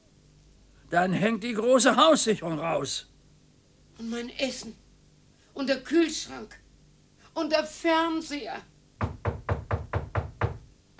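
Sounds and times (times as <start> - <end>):
speech: 0.9 - 3.1, 4.0 - 4.8, 5.6 - 6.6, 7.4 - 8.7
knocking on a door: 9.0 - 10.9.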